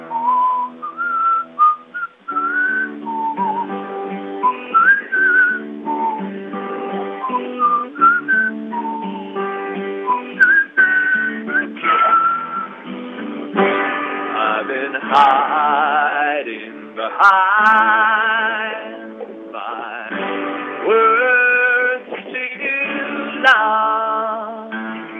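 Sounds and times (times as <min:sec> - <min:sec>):
sustained musical backing: 0:00.0 - 0:25.1
person whistling a bright lilting melody loudly: 0:00.1 - 0:06.4, 0:07.2 - 0:12.8.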